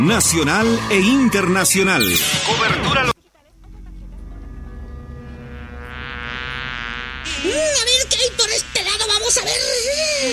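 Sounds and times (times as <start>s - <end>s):
speech: 0.0s - 3.1s
fly buzzing: 4.9s - 10.3s.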